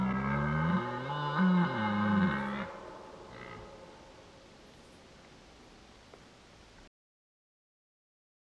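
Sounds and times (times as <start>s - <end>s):
deer roaring in the rut: 0.0s - 4.3s
quiet hiss: 0.0s - 6.9s.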